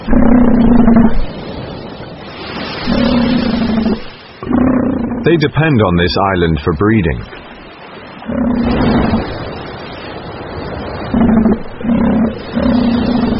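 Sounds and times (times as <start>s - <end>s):
elephant seal guttural roar: 0.0s - 1.3s, 2.8s - 5.3s, 8.2s - 9.3s, 11.1s - 13.3s
man narrating: 5.2s - 7.3s
speech: 5.2s - 7.4s.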